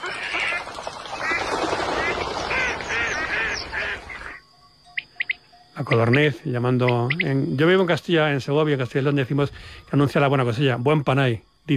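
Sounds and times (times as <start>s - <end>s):
ducks quacking on the lagoons of the Mancha Húmeda wetlands in Spain: 0.0s - 4.4s
speech: 5.8s - 11.7s.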